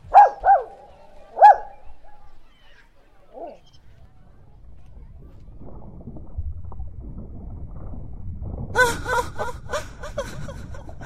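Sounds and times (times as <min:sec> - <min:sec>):
low rumbling splashing noise: 0:00.0 - 0:11.0
dog barking on a shore: 0:00.1 - 0:02.3
laughter: 0:08.8 - 0:11.0.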